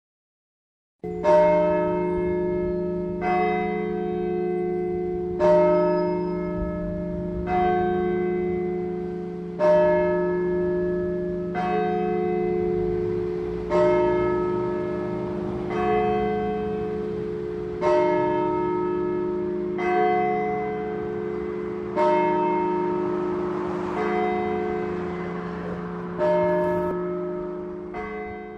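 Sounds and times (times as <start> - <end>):
church bells ringing: 1.0 - 28.5.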